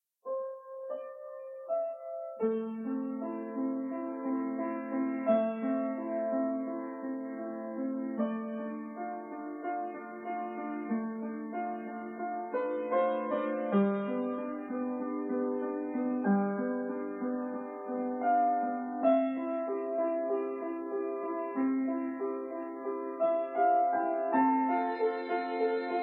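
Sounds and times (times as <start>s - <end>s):
piano: 0.0s - 26.0s
violin: 24.4s - 26.0s.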